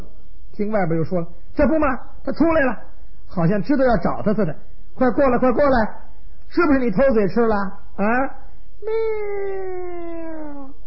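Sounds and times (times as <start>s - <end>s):
speech: 0.6s - 10.4s
person imitating a cat meow: 8.8s - 10.8s.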